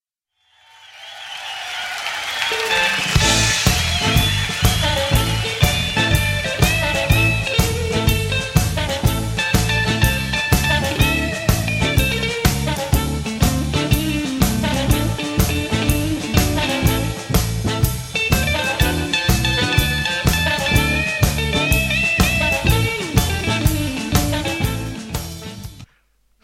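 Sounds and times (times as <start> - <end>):
opening riff: 2.0 - 25.9.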